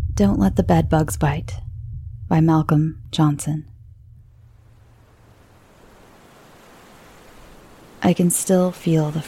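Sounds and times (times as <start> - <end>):
speech: 0.2 - 1.6, 2.3 - 3.7, 8.1 - 9.2
ocean waves breaking: 4.2 - 9.2.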